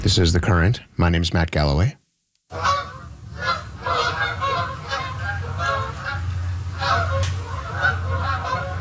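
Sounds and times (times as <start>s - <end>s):
speech: 0.1s - 2.7s
flock of Canada geese honking in migration: 2.5s - 8.7s.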